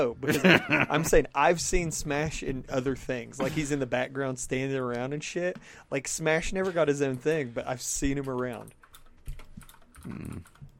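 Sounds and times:
speech: 0.0 - 8.8, 10.0 - 10.6
typing on a computer keyboard: 8.2 - 10.7.

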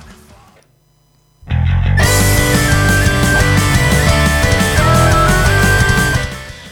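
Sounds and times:
full band track with driving bass, distorted guitars and sustained lead melody: 2.0 - 6.7.

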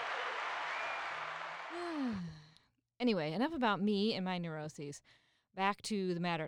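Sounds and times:
whoop or whistle: 0.0 - 1.9
crowd applause: 0.0 - 2.1
speech: 3.0 - 6.4.

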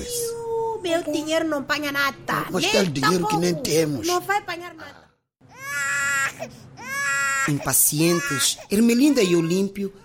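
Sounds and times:
speech: 1.0 - 5.1, 5.8 - 6.7, 7.4 - 10.0
infant wailing: 5.5 - 10.0.

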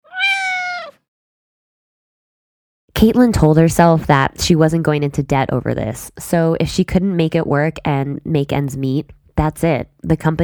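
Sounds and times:
cat meowing: 0.0 - 1.0
speech: 3.0 - 10.4.

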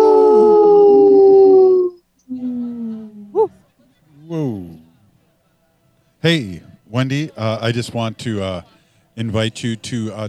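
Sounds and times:
people howling like wolves: 0.0 - 2.0
speech: 6.2 - 10.2.

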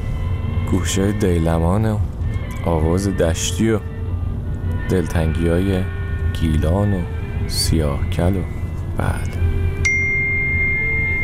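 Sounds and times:
low hum: 0.0 - 11.2
speech: 0.7 - 3.9, 4.9 - 9.4
mobile phone notification ding: 9.8 - 11.2.

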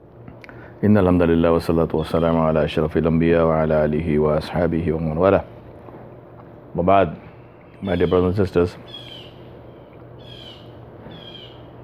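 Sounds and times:
steady low hum: 0.0 - 11.8
speech: 0.8 - 5.6, 6.8 - 7.2, 7.8 - 9.1
bird calling: 1.9 - 2.5, 7.2 - 11.8.

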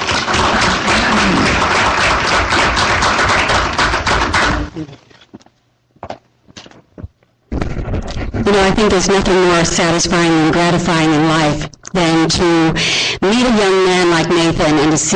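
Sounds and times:
evening panel audience applause welcoming a speaker: 0.0 - 4.9
speech: 8.5 - 15.1.

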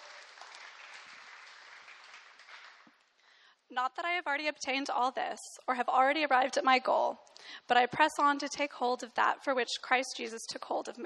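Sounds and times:
audience applause: 0.0 - 3.0
speech: 3.7 - 11.0.

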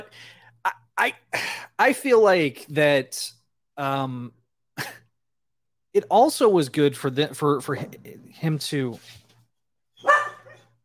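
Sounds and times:
speech: 0.0 - 5.0, 6.0 - 9.2
faint brief dog yelp: 10.0 - 10.6
dog barking at someone outside an apartment complex: 10.0 - 10.7.

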